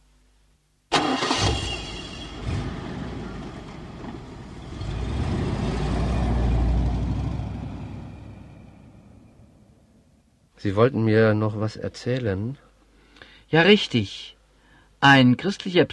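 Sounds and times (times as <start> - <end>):
car engine starting and driving: 0.9 - 9.6
speech: 10.6 - 12.6, 13.5 - 14.4, 15.0 - 15.9.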